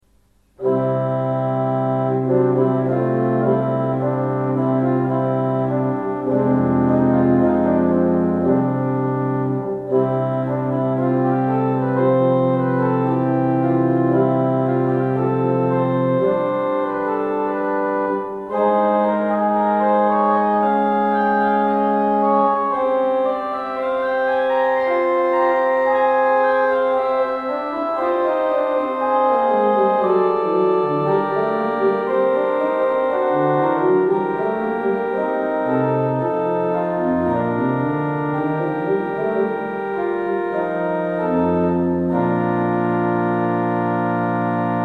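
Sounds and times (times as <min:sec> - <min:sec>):
violin: 0:00.6 - 0:44.8.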